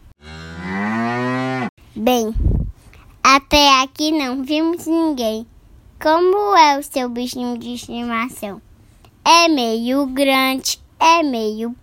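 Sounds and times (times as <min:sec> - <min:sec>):
cow mooing: 0:00.2 - 0:01.7
speech: 0:02.0 - 0:02.6, 0:03.3 - 0:11.8.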